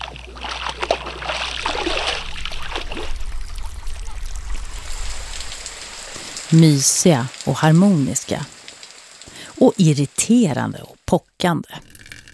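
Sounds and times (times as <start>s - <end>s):
steady low rumble: 0.0s - 6.6s
water sloshing and splashing: 0.0s - 9.4s
scattered bright water droplets: 0.0s - 12.3s
speech: 6.5s - 8.6s, 9.6s - 11.9s.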